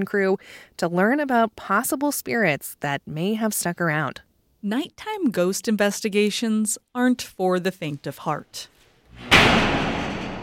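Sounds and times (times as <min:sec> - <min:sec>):
speech: 0:00.0 - 0:09.7
heavy door slamming shut: 0:09.2 - 0:10.4.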